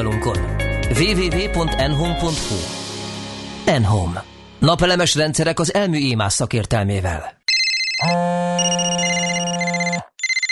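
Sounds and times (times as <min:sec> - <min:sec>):
speech: 0:00.0 - 0:02.8, 0:03.6 - 0:07.4, 0:08.0 - 0:08.2
mobile phone bright electronic ringtone while driving: 0:07.5 - 0:10.4.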